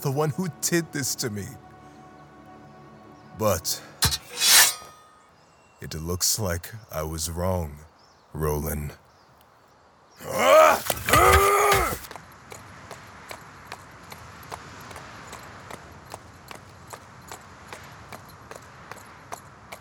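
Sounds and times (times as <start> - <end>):
speech: 0.0 - 1.7, 3.4 - 3.9, 5.8 - 9.0, 10.2 - 11.4
horse hooves clip-clopping at a walking pace: 12.1 - 19.7.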